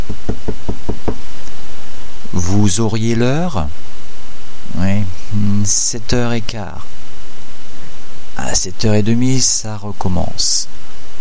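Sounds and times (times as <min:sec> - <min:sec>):
knuckles knocking on a car window glass: 0:00.0 - 0:01.3
speech: 0:02.6 - 0:03.8, 0:04.7 - 0:06.9, 0:08.4 - 0:10.8.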